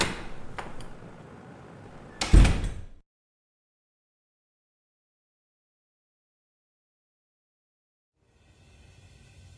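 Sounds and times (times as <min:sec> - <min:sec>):
door shutting with a solid thud: 0:00.0 - 0:01.0, 0:02.1 - 0:03.0
door opening: 0:00.0 - 0:03.0.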